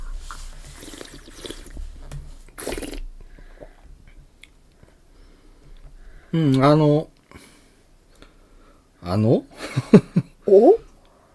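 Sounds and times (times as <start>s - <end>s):
person slurping a chocolate-tasting drink while drawing in air: 0.1s - 1.9s, 2.5s - 3.1s
faint wet mouth and liquid sounds: 0.2s - 3.8s
speech: 6.3s - 7.1s, 9.1s - 10.8s.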